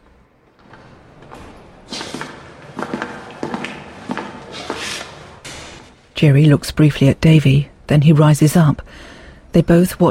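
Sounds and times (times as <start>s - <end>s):
footsteps of two prison guards walking down a corridor: 0.0s - 6.1s
speech: 6.2s - 10.0s.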